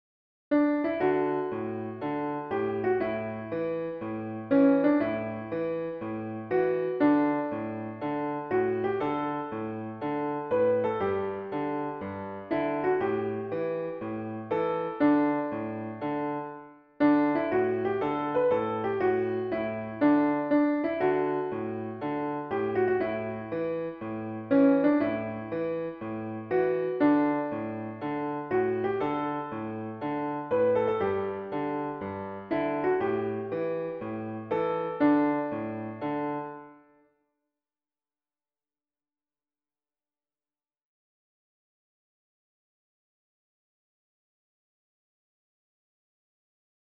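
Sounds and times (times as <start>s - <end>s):
piano piece: 0.5s - 37.0s.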